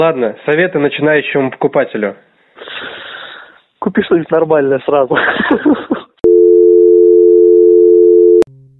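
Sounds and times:
speech: 0:00.0 - 0:02.3, 0:03.8 - 0:06.0
telephone ringing tone while placing a call: 0:06.2 - 0:08.5.

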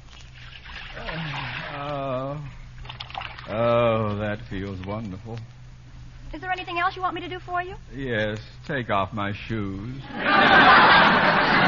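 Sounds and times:
hot water poured into a basin: 0:00.4 - 0:01.8, 0:02.8 - 0:03.6
speech: 0:03.5 - 0:05.6, 0:06.3 - 0:11.6
laughter: 0:10.0 - 0:11.6.

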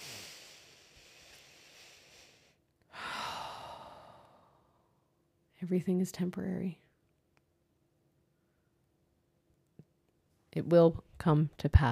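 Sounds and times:
deep breath drawn and let out as a soft airy sigh: 0:00.0 - 0:04.9
speech: 0:05.6 - 0:06.9, 0:10.6 - 0:11.9.

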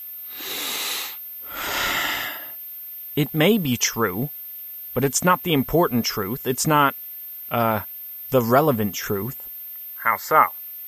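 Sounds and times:
big breath: 0:00.3 - 0:02.6
speech: 0:03.2 - 0:04.4, 0:05.0 - 0:10.6.

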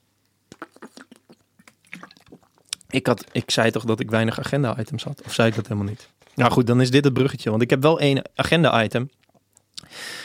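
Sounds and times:
person sipping a drink with wet mouth clicks and small gulps: 0:00.5 - 0:03.4
speech: 0:02.9 - 0:09.2.

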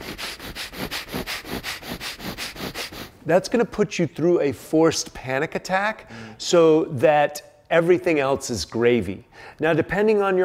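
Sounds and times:
breath of fire, rapid forceful nasal breathing: 0:00.0 - 0:03.2
speech: 0:03.3 - 0:10.4.

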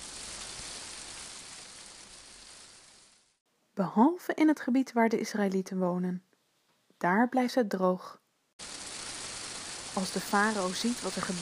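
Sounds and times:
heavy rain and hail pouring down: 0:00.0 - 0:03.4, 0:08.6 - 0:11.4
speech: 0:03.8 - 0:06.3, 0:07.0 - 0:08.8, 0:10.0 - 0:11.4.

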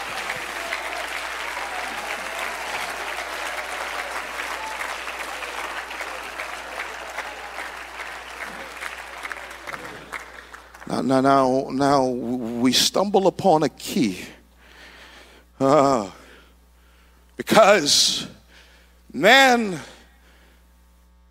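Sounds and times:
large audience clapping hands: 0:00.0 - 0:11.5
speech: 0:11.0 - 0:14.4, 0:15.6 - 0:16.2, 0:17.5 - 0:18.4, 0:19.1 - 0:19.9.

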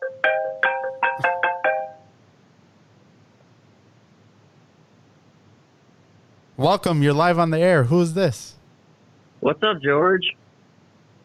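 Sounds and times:
bright electronic incoming phone call ringtone: 0:00.0 - 0:02.1
speech: 0:06.6 - 0:08.6, 0:09.4 - 0:10.4.

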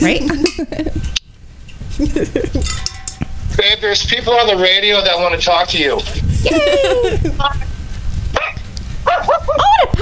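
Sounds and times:
speech: 0:00.0 - 0:00.9, 0:02.0 - 0:02.9, 0:03.6 - 0:07.7
laughter: 0:01.9 - 0:02.7, 0:06.1 - 0:07.7, 0:09.2 - 0:09.9
puppy barking with high squeaky yaps: 0:08.4 - 0:09.5.

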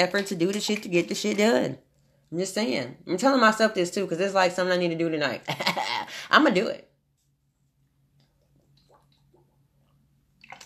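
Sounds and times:
speech: 0:00.0 - 0:06.9
low steady hum: 0:00.0 - 0:10.6
person sipping and swallowing water: 0:08.1 - 0:10.6.

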